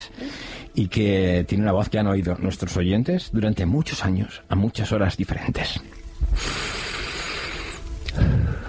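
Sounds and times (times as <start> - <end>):
man drawing a long audible breath into a microphone: 0.1 - 0.7, 6.2 - 8.6
speech: 0.8 - 6.8.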